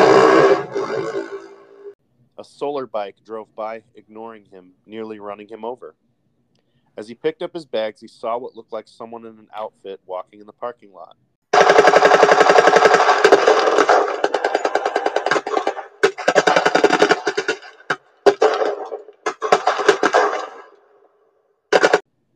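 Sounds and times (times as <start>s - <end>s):
speech: 2.4s - 6.0s, 7.0s - 14.1s
gunfire bursts in a parking lot: 11.5s - 20.7s, 21.7s - 22.0s.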